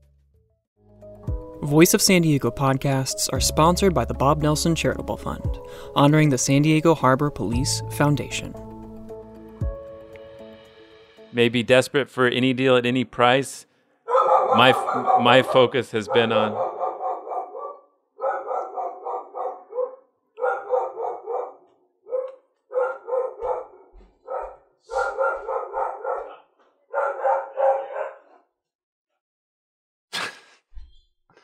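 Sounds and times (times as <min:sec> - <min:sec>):
speech: 0:01.6 - 0:08.6, 0:11.4 - 0:13.7, 0:14.5 - 0:16.7
dog barking loudly at a delivery: 0:14.1 - 0:28.5.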